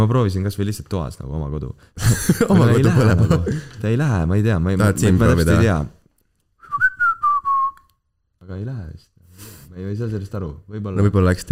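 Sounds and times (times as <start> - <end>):
speech: 0.0 - 6.0, 8.5 - 11.5
laughter: 2.0 - 3.8
person whistling a short wavering tune: 6.6 - 8.0.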